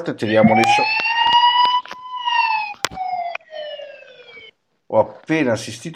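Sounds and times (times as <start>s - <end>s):
speech: 0.0s - 1.2s, 4.9s - 5.9s
siren wailing: 0.2s - 4.5s.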